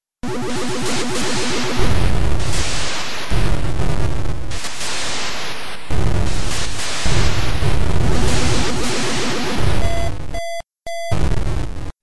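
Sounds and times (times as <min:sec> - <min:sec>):
1980s arcade game explosion bursts: 0:00.2 - 0:10.1
short electronic beeps: 0:09.8 - 0:11.2.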